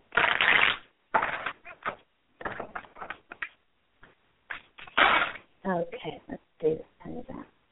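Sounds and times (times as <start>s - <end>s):
deck of tarot cards being shuffled: 0.1s - 3.6s
speech: 5.9s - 6.9s.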